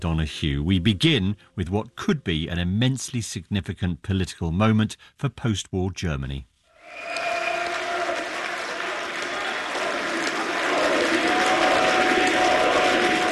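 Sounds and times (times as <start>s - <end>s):
speech: 0.0s - 7.2s
crowd of party supporters cheering and applauding an election victory: 6.8s - 13.3s.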